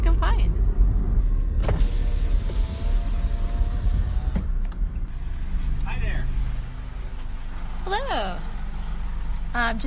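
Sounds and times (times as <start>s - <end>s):
car engine and road rumble heard from inside the vehicle: 0.0s - 9.8s
car power window whirring: 1.6s - 9.5s.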